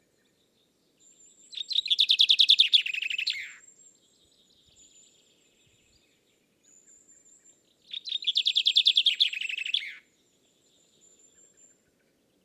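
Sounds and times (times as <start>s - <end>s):
common chaffinch Fringilla coelebs singing: 1.1s - 3.7s, 7.8s - 10.0s.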